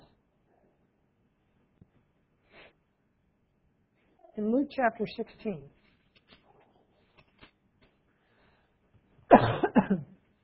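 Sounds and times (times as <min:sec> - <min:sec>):
speech: 0:04.4 - 0:05.8
person coughing harshly: 0:09.3 - 0:10.2.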